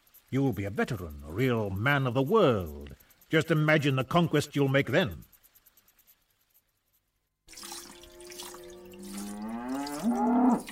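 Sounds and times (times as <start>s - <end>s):
speech: 0.3s - 5.3s
wet dripping and spattering of milking: 7.5s - 10.6s
cow mooing during milking: 8.0s - 10.6s.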